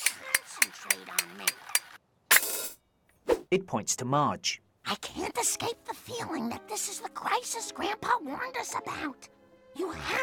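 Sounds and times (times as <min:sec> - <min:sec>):
clockwork monkey clashing its cymbals: 0:00.0 - 0:02.0
speech: 0:03.5 - 0:10.2.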